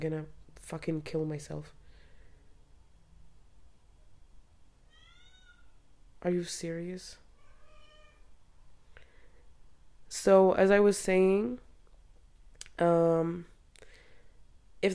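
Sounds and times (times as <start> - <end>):
speech: 0.0 - 1.8, 6.2 - 7.2, 10.1 - 11.6, 12.8 - 13.5
quiet room hiss: 0.2 - 14.9
cat meowing loudly near a door: 4.8 - 5.8, 7.3 - 8.4.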